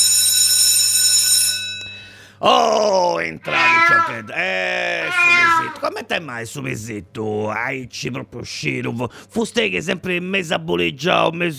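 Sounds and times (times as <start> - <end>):
school bell ringing: 0.0 - 2.1
speech: 2.4 - 11.5.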